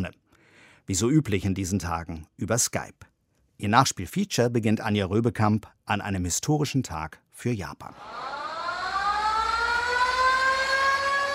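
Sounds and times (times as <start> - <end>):
speech: 0.9 - 8.4
air raid siren wailing in a baseball stadium: 7.9 - 11.3.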